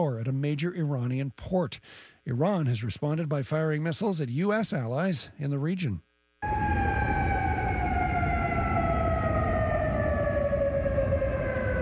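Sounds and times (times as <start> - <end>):
speech: 0.0 - 6.6
air raid sirens wailing across a city during missile interception: 6.4 - 11.8
broad rumble of city noise: 6.4 - 11.8.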